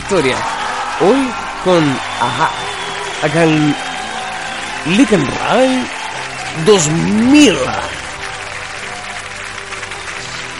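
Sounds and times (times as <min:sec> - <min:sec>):
steady applause from a group: 0:00.0 - 0:10.5
speech: 0:00.1 - 0:02.6, 0:03.2 - 0:03.9, 0:04.8 - 0:06.0, 0:06.6 - 0:08.0.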